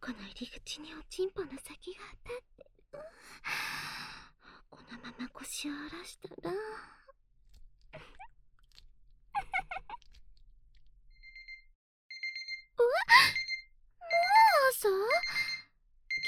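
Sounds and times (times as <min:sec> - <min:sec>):
speech: 0:00.4 - 0:02.5, 0:05.4 - 0:07.0
alarm clock ringing with electronic tones: 0:11.2 - 0:14.4, 0:15.1 - 0:16.2.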